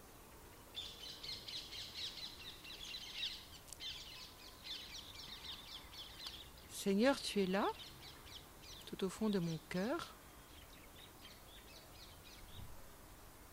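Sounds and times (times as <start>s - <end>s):
faint hum: 0.0s - 13.5s
birds chirping and singing outdoors: 0.5s - 12.7s
speech: 6.8s - 7.8s, 9.0s - 10.2s.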